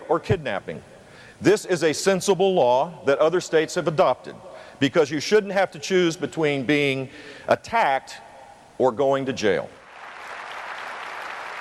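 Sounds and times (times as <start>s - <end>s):
speech: 0.1s - 8.2s, 8.8s - 9.8s
crowd applauding: 9.9s - 11.5s.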